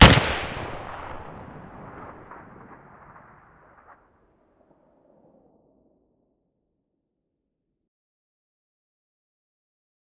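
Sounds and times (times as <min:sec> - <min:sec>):
SVD rifle muzzle blast: 0:00.0 - 0:01.4.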